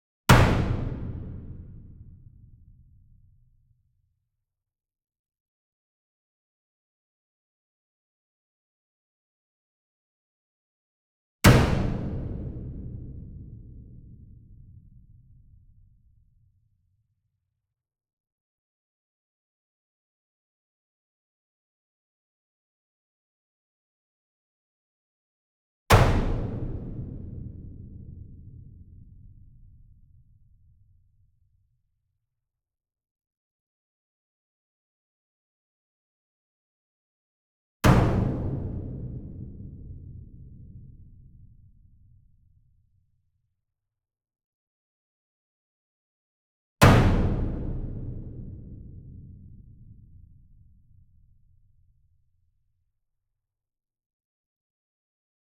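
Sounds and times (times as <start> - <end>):
66 inch drum hit with medium whip beater: 0.3 - 1.9, 11.5 - 13.5, 25.9 - 27.4, 37.9 - 39.7, 46.8 - 49.2.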